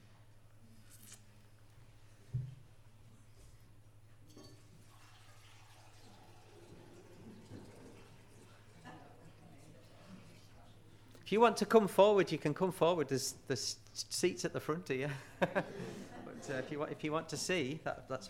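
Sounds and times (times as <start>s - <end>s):
water with food colouring poured from a jug into a vase: 4.6s - 10.4s
speech: 11.3s - 18.2s
laughter: 15.0s - 17.1s.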